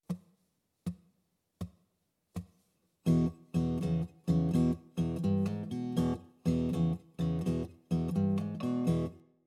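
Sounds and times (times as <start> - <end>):
blues guitar in open tuning: 3.0 - 9.3.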